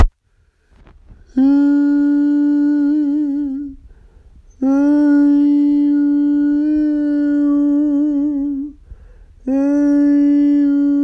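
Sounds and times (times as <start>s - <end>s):
woman singing open low: 1.2s - 3.9s, 4.5s - 8.8s, 9.4s - 11.0s.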